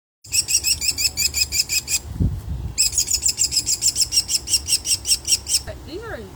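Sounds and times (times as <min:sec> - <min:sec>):
fledgling American kestrel: 0:00.3 - 0:02.0, 0:02.8 - 0:05.8.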